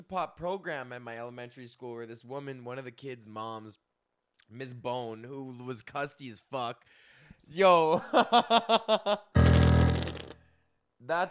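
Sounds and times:
speech: 0.1s - 3.9s, 4.5s - 9.4s, 11.0s - 11.2s
comedic fart sound effect: 9.4s - 10.4s.

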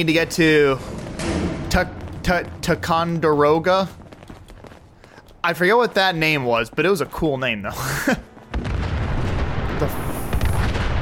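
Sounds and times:
speech: 0.0s - 1.0s, 1.8s - 4.0s, 5.4s - 8.3s
explosion in a video game: 0.5s - 4.5s, 8.5s - 11.0s.

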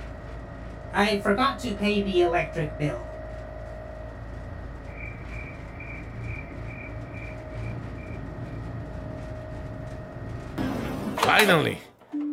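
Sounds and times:
steady droning door motor hum: 0.0s - 11.3s
speech: 1.0s - 3.1s, 11.4s - 11.8s
slow mechanical door grinding open: 4.0s - 11.7s
faint repeating chirp: 4.9s - 8.2s.

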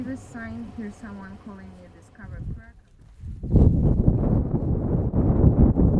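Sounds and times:
person speaking: 0.0s - 2.8s
cold gust of wind buffeting the microphone: 2.2s - 5.9s.

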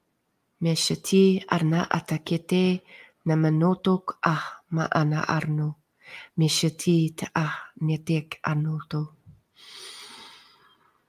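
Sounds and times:
speech: 0.6s - 9.9s
person breathing in: 2.8s - 3.2s, 6.0s - 6.4s, 9.5s - 11.0s.

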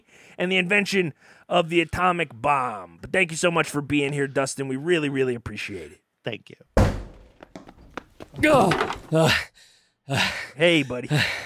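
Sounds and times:
speech: 0.4s - 7.0s, 8.4s - 11.4s
dull thuds and knocks of a person crashing into a desk: 6.8s - 9.1s.

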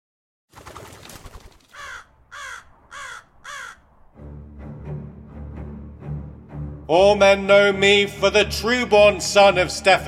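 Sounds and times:
raven cawing: 1.6s - 4.2s
speech: 6.9s - 10.0s.

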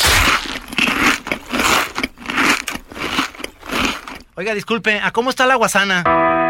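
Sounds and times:
fried potato chips being chewed: 0.0s - 4.4s
speech: 4.4s - 6.4s.

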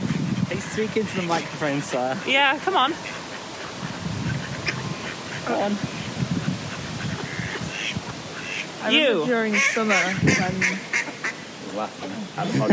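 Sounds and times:
duck quacking and honking: 0.2s - 11.5s
speech: 0.5s - 3.2s, 5.5s - 6.0s, 8.8s - 11.0s, 11.8s - 12.7s.

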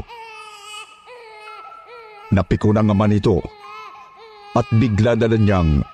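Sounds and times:
baby wailing loudly with high strained cries and sobbing: 0.0s - 2.4s, 3.4s - 5.9s
speech: 2.3s - 3.6s, 4.5s - 5.9s.

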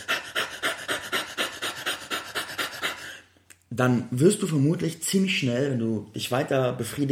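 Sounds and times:
person imitating rapid panting: 0.0s - 3.3s
speech: 3.7s - 7.1s.

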